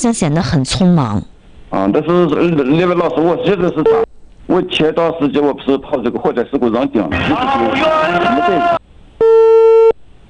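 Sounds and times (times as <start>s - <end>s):
speech: 0.0s - 8.8s
telephone busy signal after a hung-up call: 9.2s - 10.0s.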